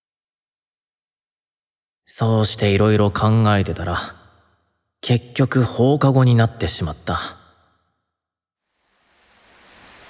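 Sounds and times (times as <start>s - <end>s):
speech: 2.1s - 4.2s, 5.0s - 7.4s
rain: 8.7s - 10.0s.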